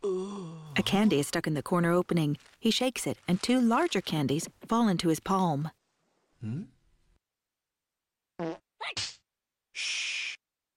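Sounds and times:
speech: 0:00.8 - 0:05.8, 0:06.4 - 0:06.7, 0:09.8 - 0:10.0
short cartoonish fart with falling squeaky pitch: 0:08.4 - 0:09.2.

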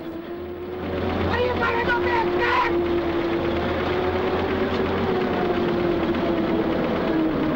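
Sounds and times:
truck engines of a convoy driving through a gateway onto a fruit ranch: 0:00.0 - 0:07.5.

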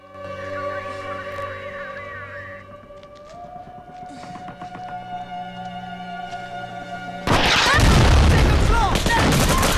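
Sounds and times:
steady droning wail: 0:00.0 - 0:07.2
volley of gunfire: 0:07.3 - 0:09.7.

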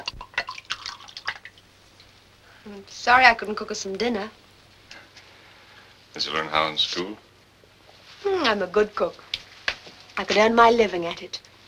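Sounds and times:
wine pouring into a glass: 0:00.0 - 0:02.1
speech: 0:02.6 - 0:04.4, 0:06.2 - 0:07.2, 0:08.2 - 0:09.2, 0:10.2 - 0:11.5.

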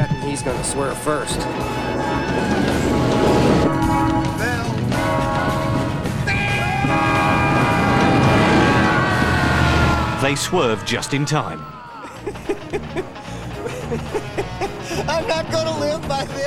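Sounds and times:
train horn blaring: 0:00.0 - 0:11.8
laughter: 0:00.0 - 0:16.4
train rumbling: 0:00.0 - 0:16.4
speech: 0:00.4 - 0:03.0, 0:10.2 - 0:11.8, 0:15.3 - 0:16.4.

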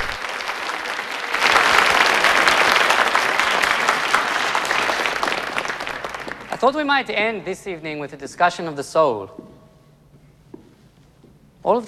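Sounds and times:
polite applause from a packed theatre audience after a stage magic trick: 0:00.0 - 0:07.9
speech: 0:06.6 - 0:09.5, 0:11.6 - 0:11.8.

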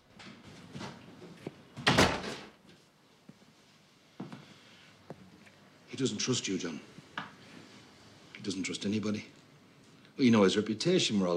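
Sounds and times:
office door being shut: 0:01.8 - 0:02.5
speech: 0:06.0 - 0:07.0, 0:08.5 - 0:09.4, 0:10.2 - 0:11.3.

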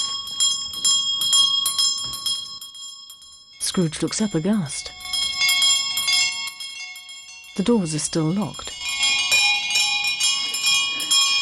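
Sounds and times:
wall-mounted bell ringing: 0:00.0 - 0:11.4
speech: 0:03.7 - 0:05.0, 0:07.6 - 0:08.8.

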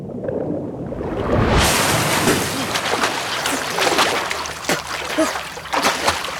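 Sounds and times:
lake water splashing and sloshing from a boy's powerful swimming strokes: 0:01.4 - 0:06.3.

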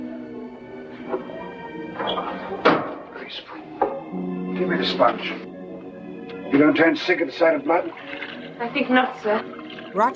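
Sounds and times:
music: 0:00.0 - 0:10.1
door being closed: 0:02.0 - 0:03.1
speech: 0:02.0 - 0:05.5, 0:06.5 - 0:10.1.

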